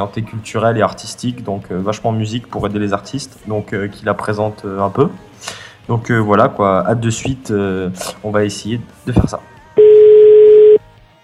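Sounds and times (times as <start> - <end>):
speech: 0.0 - 9.5
telephone ringback tone: 9.8 - 10.8.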